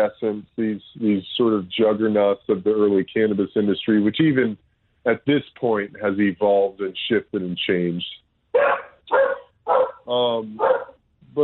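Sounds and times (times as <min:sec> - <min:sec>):
speech: 0:00.0 - 0:09.2, 0:10.1 - 0:10.8
dog barking: 0:08.6 - 0:11.0.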